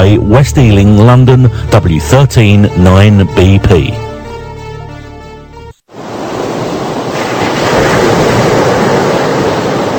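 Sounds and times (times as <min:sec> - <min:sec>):
speech: 0:00.0 - 0:04.1
ocean surf of breaking waves: 0:05.9 - 0:09.9.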